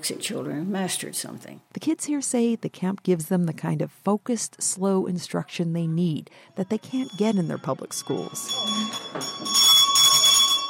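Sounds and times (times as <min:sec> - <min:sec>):
speech: 0:00.0 - 0:10.1
loud electric camp bell ringing: 0:06.8 - 0:10.6.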